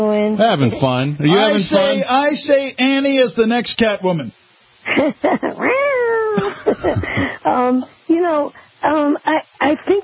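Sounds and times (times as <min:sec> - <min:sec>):
speech: 0:00.0 - 0:05.8, 0:06.4 - 0:10.0
woman imitating a cat meow: 0:05.5 - 0:06.4.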